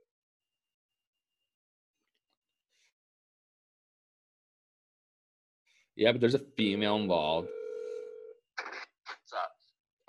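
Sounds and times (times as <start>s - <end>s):
speech: 6.0s - 7.6s
phone call ringback tone on speaker: 7.4s - 8.4s.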